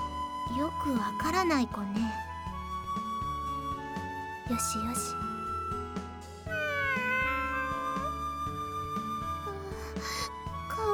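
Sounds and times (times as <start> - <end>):
soft music: 0.0 - 10.9
speech: 0.6 - 2.3, 4.5 - 5.3
cat meowing: 6.5 - 10.3.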